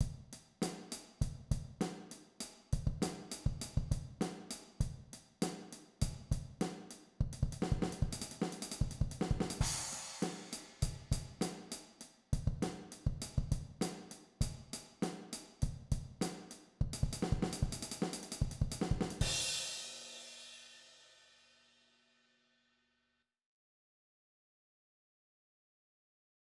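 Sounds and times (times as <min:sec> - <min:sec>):
linear drum set fill: 0:00.0 - 0:21.4.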